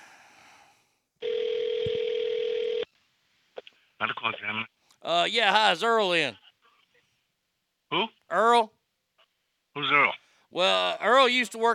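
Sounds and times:
steady telephone tone: 1.2s - 2.9s
speech: 4.0s - 6.4s, 7.9s - 8.8s, 9.8s - 11.7s.

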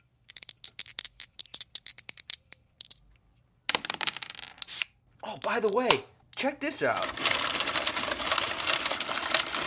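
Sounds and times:
speech: 5.3s - 7.4s
automatic card shuffler whirring: 7.0s - 9.6s.

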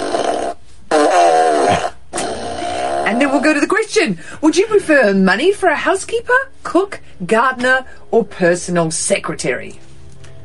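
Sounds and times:
fart noises from a novelty fart machine: 0.0s - 3.6s
speech: 3.1s - 9.8s.

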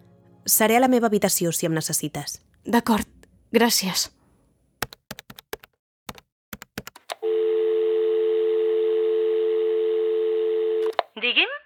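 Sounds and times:
speech: 0.5s - 4.2s
loud steady electronic dial tone: 7.2s - 11.0s
telephone dialing clicks: 10.7s - 11.1s.

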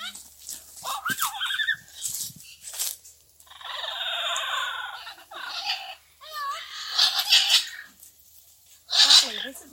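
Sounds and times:
yellow-headed parrot squawking and warbling: 3.5s - 7.8s, 8.9s - 9.5s.

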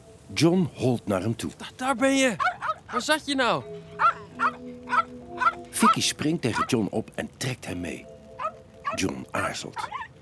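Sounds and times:
speech: 0.3s - 4.0s, 5.8s - 8.1s, 8.9s - 10.1s
dog barking: 2.4s - 3.1s, 3.9s - 6.0s.

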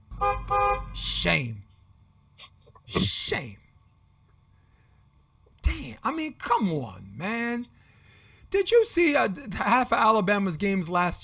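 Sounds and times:
car horn honks: 0.1s - 1.0s
speech: 1.0s - 1.7s, 2.4s - 3.6s, 5.8s - 7.8s, 8.5s - 11.2s.

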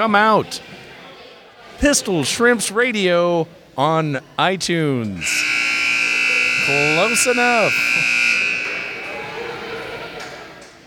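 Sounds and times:
speech: 0.0s - 0.8s, 1.8s - 5.6s, 6.6s - 8.2s
crowd noise and chatter: 0.0s - 10.8s
loud harsh arena buzzer: 5.2s - 10.6s.

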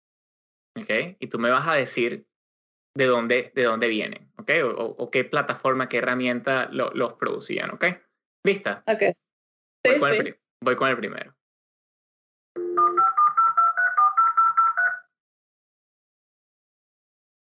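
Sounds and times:
speech: 0.8s - 2.3s, 2.9s - 9.2s, 9.8s - 11.4s
dial-up modem dialing touch tones: 12.6s - 15.1s.

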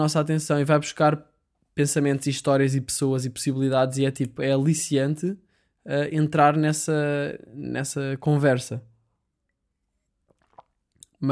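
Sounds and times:
speech: 0.0s - 8.9s
sipping and swallowing a gulp of water: 10.0s - 11.2s
soft wet clicks and squishy mouth noises: 10.1s - 11.2s.

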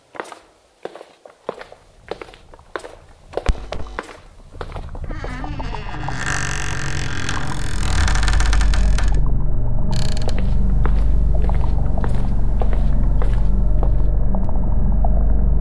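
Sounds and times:
slow steady footsteps of two hunched figures: 0.0s - 9.2s, 9.8s - 14.5s
dense droning buzz: 3.3s - 15.5s.

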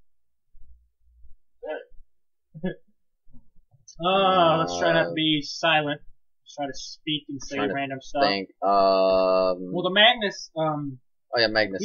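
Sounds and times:
hiccups: 1.6s - 2.0s
speech: 2.6s - 2.8s, 4.0s - 11.8s.

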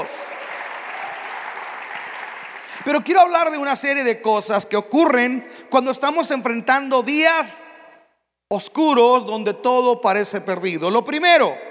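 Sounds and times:
audience applauding: 0.0s - 3.2s
speech: 2.8s - 7.8s, 8.5s - 11.6s.

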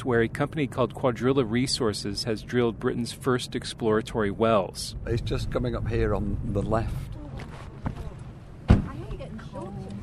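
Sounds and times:
speech: 0.0s - 7.2s
car door opening and shutting at an exploratory shale gas well site near Blackpool: 7.4s - 9.1s.

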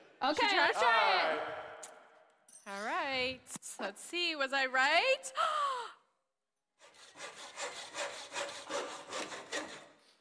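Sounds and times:
speech: 0.2s - 1.6s, 3.2s - 5.8s
handsaw cutting wood: 6.8s - 10.0s.

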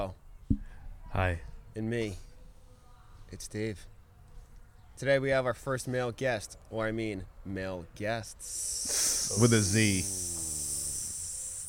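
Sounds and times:
speech: 1.2s - 2.3s, 3.3s - 3.9s, 5.0s - 10.3s
voice imitating a hissing snake: 8.4s - 11.6s.

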